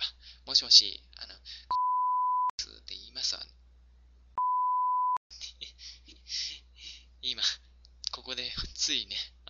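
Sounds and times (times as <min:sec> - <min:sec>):
speech: 0:00.5 - 0:01.8, 0:08.3 - 0:09.3
censor beep over a phone call: 0:01.7 - 0:02.5, 0:04.4 - 0:05.2.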